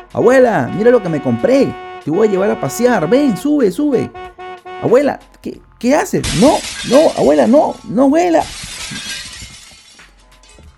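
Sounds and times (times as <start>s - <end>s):
speech: 0.1s - 9.1s
car window glass fragments tinkling and settling: 6.2s - 10.7s
car window glass shattering from bat: 6.2s - 10.7s.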